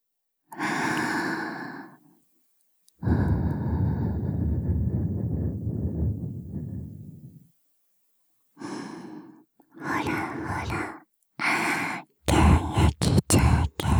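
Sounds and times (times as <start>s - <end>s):
soft breathy puffs of air blown into the ear by a girl: 3.0s - 7.4s, 8.6s - 13.9s.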